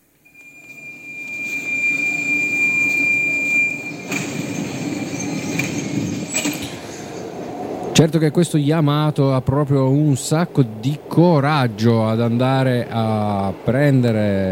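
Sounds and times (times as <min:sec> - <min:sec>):
subway train rumbling by with low roar: 0:00.0 - 0:14.4
subway train wheels high-pitched squeal: 0:00.3 - 0:07.5
subway train clattering bursts: 0:00.3 - 0:08.2
speech: 0:08.0 - 0:14.4.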